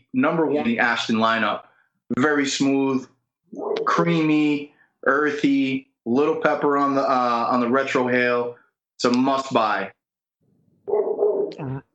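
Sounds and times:
speech: 0.1 - 10.0, 10.9 - 11.9
dog yowling barks: 10.9 - 11.5.

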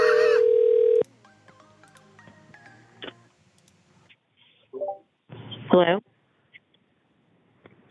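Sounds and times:
steady electronic phone tone: 0.0 - 1.1.

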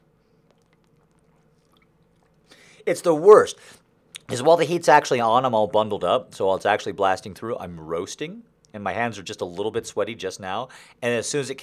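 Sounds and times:
low hum: 0.0 - 11.6
person sipping water with mouth clicks: 0.3 - 2.8
slurp of water: 0.4 - 2.8
small swallowing sounds: 0.4 - 2.8
speech: 2.8 - 11.6.

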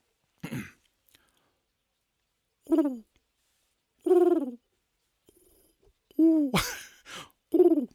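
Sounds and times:
person imitating pigeon cooing: 2.7 - 3.1, 4.0 - 4.7, 6.2 - 6.7, 7.5 - 7.9.

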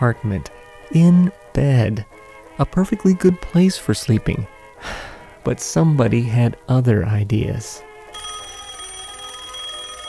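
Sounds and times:
speech: 0.0 - 7.9
telephone on a nightstand ringing in an apartment in Baltimore Maryland: 8.0 - 10.0.

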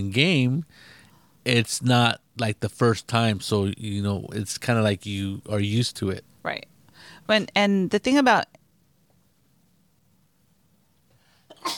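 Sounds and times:
speech: 0.0 - 6.7, 7.3 - 8.5
intake of breath: 0.7 - 1.4, 6.9 - 7.3
person sneezing: 11.5 - 11.7.

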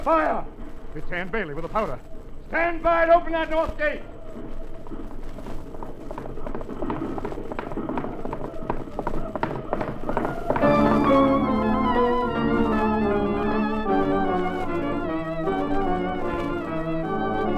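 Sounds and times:
speech: 0.0 - 5.5
horse and rider galloping with a pack horse: 0.0 - 17.5
dramatic orchestral music: 10.5 - 17.5.

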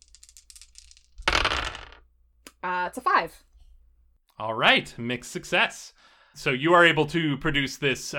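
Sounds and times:
dice clattering and tumbling across a hard surface: 0.0 - 2.0
speech: 2.6 - 3.5, 4.4 - 8.1.

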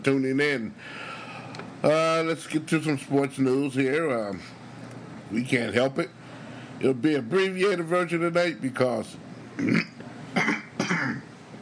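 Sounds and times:
speech: 0.0 - 4.6, 5.3 - 6.2, 6.8 - 9.9
person clearing throat: 9.6 - 11.3.

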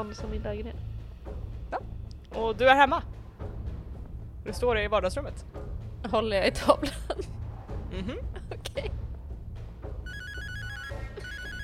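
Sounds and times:
speech: 0.0 - 1.0, 1.7 - 3.2, 4.4 - 9.0
low steady rumble: 0.0 - 10.1
electronic phone ringtone: 10.1 - 11.6
laughter: 10.9 - 11.6.

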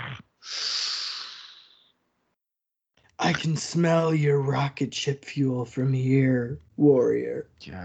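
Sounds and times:
close-miked heavy breathing: 0.4 - 1.9
long hissing exhale: 0.5 - 1.9
speech: 3.3 - 7.8.

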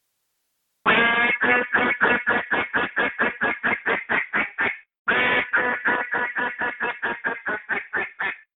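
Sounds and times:
hail calls blown on a duck call to attract ducks: 0.9 - 8.5.

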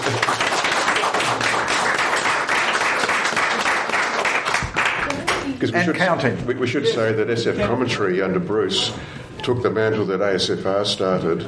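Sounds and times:
crowd clapping: 0.0 - 5.6
speech: 5.6 - 11.4.

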